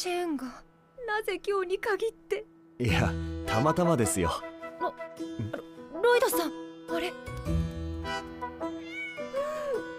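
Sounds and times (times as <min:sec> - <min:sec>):
speech: 0:00.0 - 0:07.6
black cat meowing: 0:08.7 - 0:09.8.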